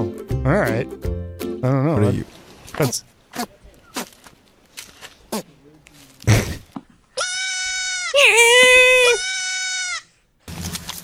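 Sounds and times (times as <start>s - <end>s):
speech: 0.4s - 3.6s
goat letting out a human-like scream-bleat: 7.3s - 10.0s.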